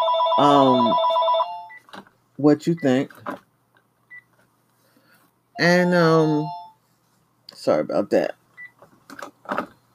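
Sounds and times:
phone with loud buzzy electronic ring: 0.0s - 1.8s, 5.6s - 6.8s
speech: 0.4s - 1.2s, 2.4s - 3.4s, 5.6s - 6.6s, 7.6s - 8.4s, 9.2s - 9.8s.

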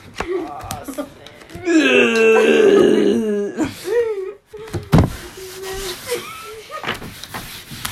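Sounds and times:
bits of voice: 1.6s - 3.7s
loud drawn-out burp: 1.7s - 3.6s
short throaty grunts: 1.7s - 3.7s.

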